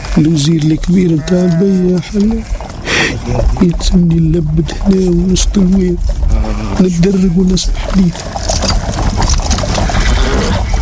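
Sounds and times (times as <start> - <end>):
constant noisy background: 0.0 - 10.8
horse hooves clip-clopping: 0.0 - 10.8
speech: 0.2 - 8.6.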